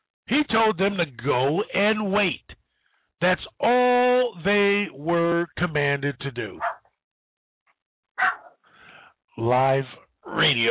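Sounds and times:
speech: 0.3s - 2.5s, 3.2s - 6.8s, 9.4s - 10.7s
dog barking: 6.6s - 6.9s, 8.2s - 8.6s.

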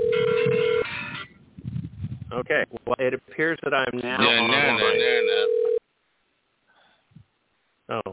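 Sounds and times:
phone ringing with an incoming call from an unknown caller: 0.0s - 1.3s, 4.2s - 5.8s
speech: 2.4s - 5.5s.

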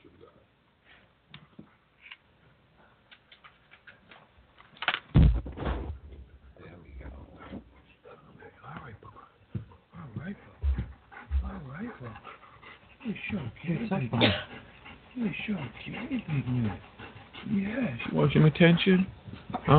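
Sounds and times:
big young dog panting: 7.0s - 19.7s
big young dog snuffling huff: 10.0s - 18.1s
speech: 13.9s - 14.5s, 15.3s - 19.7s.

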